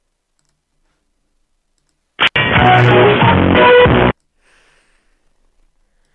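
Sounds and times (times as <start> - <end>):
tinny music played by a caller over a phone line: 2.2 - 4.2.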